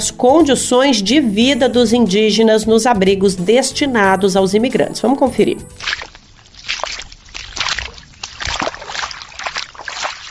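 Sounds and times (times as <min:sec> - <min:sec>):
speech: 0:00.0 - 0:06.0
footsteps sloshing through ankle-deep water: 0:05.6 - 0:10.2.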